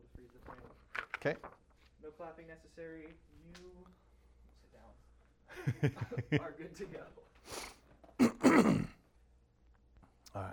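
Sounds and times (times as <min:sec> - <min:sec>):
speech: 0:01.2 - 0:01.6, 0:02.2 - 0:04.0, 0:04.7 - 0:07.7, 0:08.4 - 0:09.0, 0:10.3 - 0:10.5
man clearing throat: 0:08.2 - 0:09.0.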